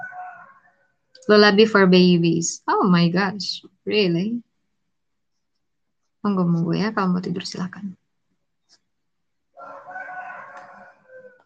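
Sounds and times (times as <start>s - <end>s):
rooster crowing: 0.0s - 1.2s, 9.5s - 11.4s
speech: 1.3s - 4.5s, 6.2s - 8.0s.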